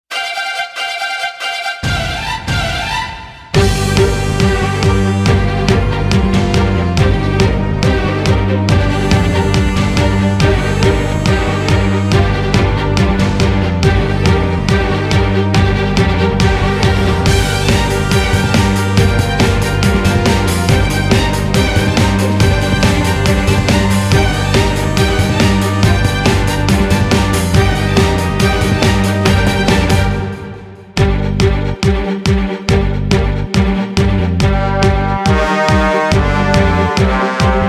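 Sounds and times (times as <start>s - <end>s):
dramatic epic orchestral sports anthem: 0.1s - 37.6s.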